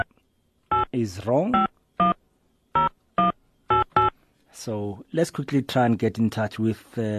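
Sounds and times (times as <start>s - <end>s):
short electronic telephone keypad beeps: 0.7s - 2.2s, 2.8s - 4.2s
speech: 1.0s - 1.7s, 4.6s - 7.1s.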